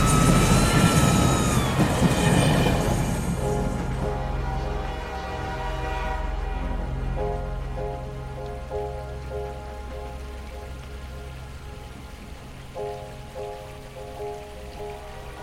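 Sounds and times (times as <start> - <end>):
high tonal train whistle: 0.0 - 7.2
train rumbling past with grinding wheels: 0.0 - 8.9.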